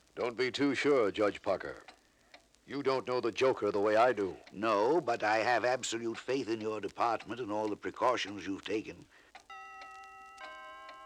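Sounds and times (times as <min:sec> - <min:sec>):
speech: 0:00.2 - 0:01.9, 0:02.7 - 0:09.2
clock chiming with resonant bell strokes: 0:09.5 - 0:11.0.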